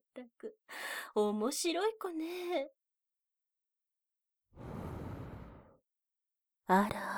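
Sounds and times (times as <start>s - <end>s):
speech: 0.2s - 2.8s, 6.7s - 7.1s
soft exhale blown into an ear: 4.6s - 5.8s.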